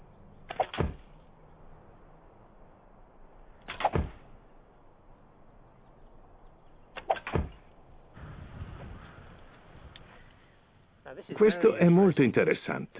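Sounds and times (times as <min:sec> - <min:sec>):
arrows striking a plaster dummy target: 0:00.5 - 0:01.1, 0:03.7 - 0:04.2, 0:07.0 - 0:07.7
speech: 0:11.2 - 0:12.9.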